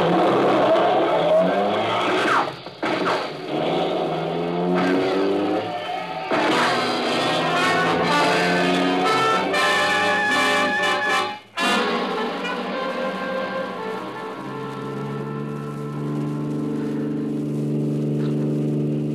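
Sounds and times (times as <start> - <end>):
car engine roaring as it accelerates in a chase: 0.0 - 19.1
car tire skids in a chase: 0.0 - 19.1.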